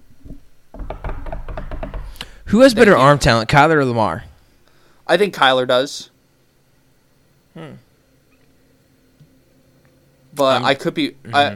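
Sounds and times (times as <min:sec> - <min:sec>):
knocking on wood: 0:00.7 - 0:02.5
speech: 0:02.5 - 0:04.3, 0:05.1 - 0:06.1, 0:07.6 - 0:07.8, 0:10.4 - 0:11.5.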